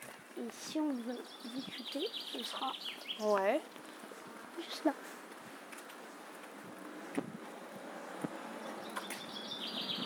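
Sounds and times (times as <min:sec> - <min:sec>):
birds chirping faintly outdoors: 0:00.1 - 0:05.0, 0:07.9 - 0:10.0
speech: 0:00.4 - 0:03.9, 0:04.6 - 0:05.2.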